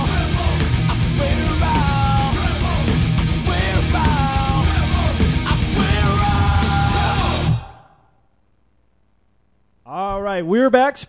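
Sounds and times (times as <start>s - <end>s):
loud rock music with distorted guitars, pounding drums and strained vocals: 0.0s - 7.8s
speech: 10.4s - 11.0s.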